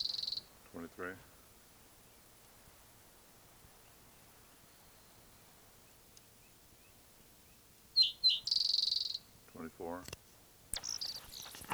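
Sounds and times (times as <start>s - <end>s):
songbird chirping and trilling: 0.0s - 0.5s, 6.4s - 9.3s, 10.8s - 11.7s
speech: 0.7s - 1.4s, 9.6s - 10.2s.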